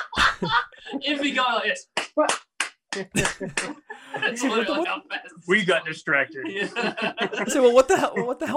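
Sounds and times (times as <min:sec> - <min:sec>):
laughter: 0:00.0 - 0:01.7, 0:03.0 - 0:08.5
speech: 0:00.4 - 0:08.5
hand slaps imitating a headboard banging against a wall: 0:02.0 - 0:03.7.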